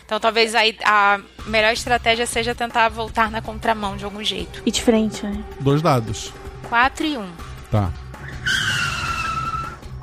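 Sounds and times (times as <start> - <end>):
speech: 0.1 - 8.6
low car engine rumble: 1.4 - 8.2
car tires screeching under hard braking: 5.5 - 10.0.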